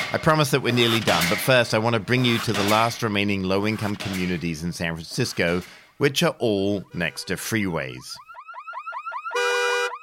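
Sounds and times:
speech: 0:00.1 - 0:08.3
car alarm whooping and blaring: 0:06.9 - 0:09.9.

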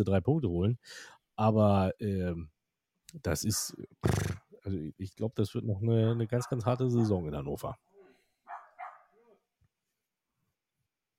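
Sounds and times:
speech: 0:00.0 - 0:02.5, 0:03.1 - 0:07.9
dog barking: 0:06.4 - 0:07.2, 0:08.4 - 0:09.4.

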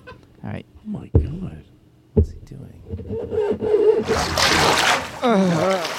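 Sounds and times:
speech: 0:00.5 - 0:01.4
water splashing in a toilet bowl: 0:04.0 - 0:05.9.

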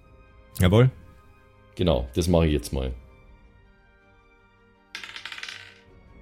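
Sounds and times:
speech: 0:00.6 - 0:01.0, 0:01.8 - 0:03.0
dice clattering across a hard table: 0:04.9 - 0:05.9.

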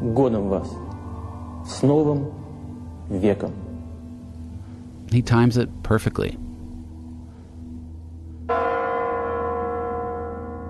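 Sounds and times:
speech: 0:00.0 - 0:01.0, 0:01.6 - 0:02.4, 0:03.1 - 0:03.6, 0:05.1 - 0:06.4
low hum: 0:00.7 - 0:10.3
large tower bell striking: 0:08.5 - 0:10.6.

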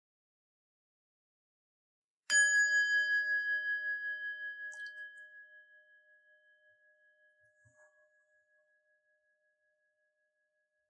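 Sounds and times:
meditation bell ringing: 0:02.3 - 0:09.5.

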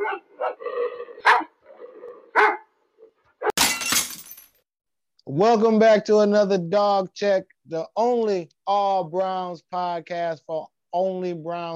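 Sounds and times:
pit bull dog barking and snarling: 0:00.0 - 0:03.6
speech: 0:05.3 - 0:11.7.

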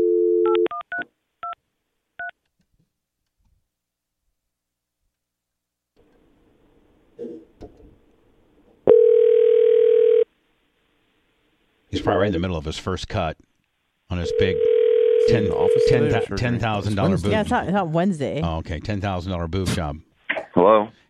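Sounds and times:
telephone dial tone: 0:00.0 - 0:01.0, 0:08.9 - 0:10.2, 0:14.3 - 0:16.0
speech: 0:12.1 - 0:13.5, 0:14.2 - 0:21.0
loud steady telephone tone: 0:15.3 - 0:16.3.

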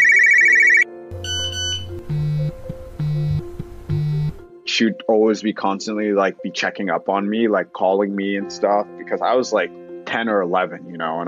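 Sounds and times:
Nokia flip phone ringtone: 0:00.0 - 0:04.4
speech: 0:04.8 - 0:11.2.

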